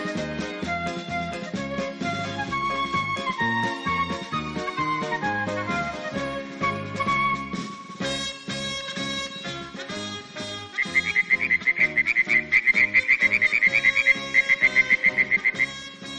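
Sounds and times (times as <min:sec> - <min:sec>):
cheerful music: 0:00.0 - 0:16.1
frog croaking: 0:10.8 - 0:15.7.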